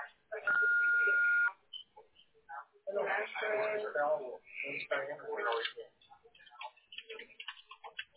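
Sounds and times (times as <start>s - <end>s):
answering machine beep: 0.5s - 1.6s
speech: 3.5s - 5.8s.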